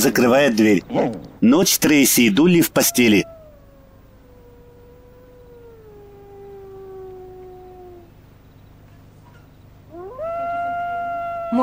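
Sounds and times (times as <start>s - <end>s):
speech: 0.0s - 3.4s
dog howling outside at night: 2.6s - 8.1s, 9.9s - 11.6s.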